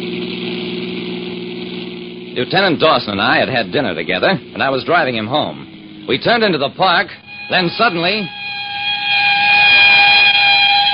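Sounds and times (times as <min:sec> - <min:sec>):
speech: 0:02.4 - 0:08.5
police ambulance siren speeding past on a park drive: 0:07.2 - 0:10.9.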